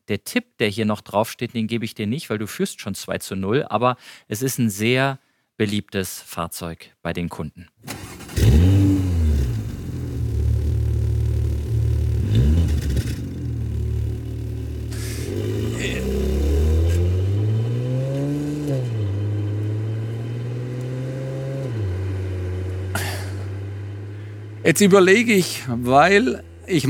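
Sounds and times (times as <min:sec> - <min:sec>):
speech: 0:00.1 - 0:08.7, 0:24.7 - 0:26.8
Porsche sports car engine revving hard: 0:08.2 - 0:26.8
Porsche sports car engine deep rumbling idle: 0:09.8 - 0:15.5.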